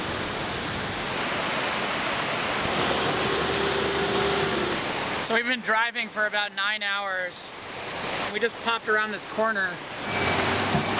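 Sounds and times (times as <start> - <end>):
heavy rain pouring down: 0.0 - 6.4, 7.3 - 10.9
speech: 5.3 - 10.2.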